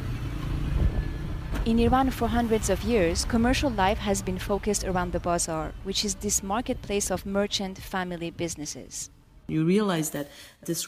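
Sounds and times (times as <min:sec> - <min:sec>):
car and motorbike engines droning: 0:00.0 - 0:08.7
downtown city street traffic rumble: 0:00.0 - 0:09.5
speech: 0:01.6 - 0:10.8.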